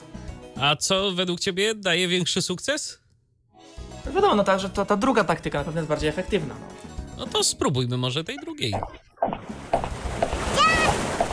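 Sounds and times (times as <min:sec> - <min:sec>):
speech: 0:00.6 - 0:03.0, 0:04.1 - 0:09.5
video game water splash effect: 0:09.3 - 0:11.3.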